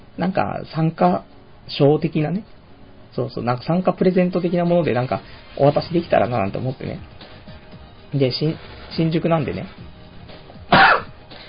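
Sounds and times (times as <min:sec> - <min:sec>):
speech: 0:00.2 - 0:02.6, 0:03.2 - 0:07.2, 0:08.1 - 0:09.9
short harsh cough: 0:10.7 - 0:11.2.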